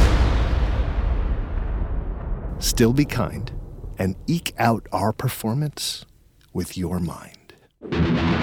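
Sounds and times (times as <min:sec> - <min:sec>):
cannon blast: 0:00.0 - 0:04.0
speech: 0:02.6 - 0:08.3.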